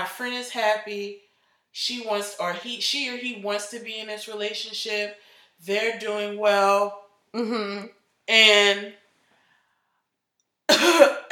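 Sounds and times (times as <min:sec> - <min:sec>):
speech: 0:00.1 - 0:09.0, 0:10.7 - 0:11.3
person clearing throat: 0:10.7 - 0:11.3
person coughing: 0:10.7 - 0:11.3.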